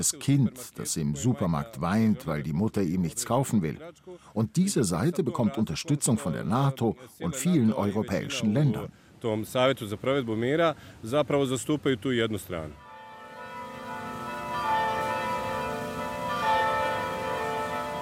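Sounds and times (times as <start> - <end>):
speech: 0.0 - 12.8
Orthodox church bells ringing: 12.8 - 18.0.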